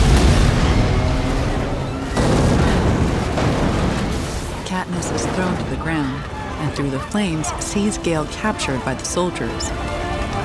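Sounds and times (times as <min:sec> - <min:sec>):
armored vehicle exploding during a street gunfight: 0:00.0 - 0:06.6
speech: 0:05.8 - 0:10.0.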